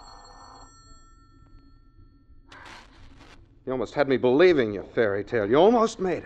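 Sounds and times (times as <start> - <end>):
telephone bell ringing: 0.0 - 2.2
speech: 3.7 - 6.2.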